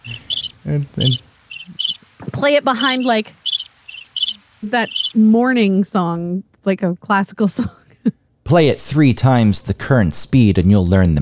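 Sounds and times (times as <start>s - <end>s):
synthetic cricket chirping from a mixer preset: 0.0s - 2.0s, 2.8s - 5.2s
speech: 0.7s - 1.3s, 2.4s - 3.4s, 4.6s - 11.2s.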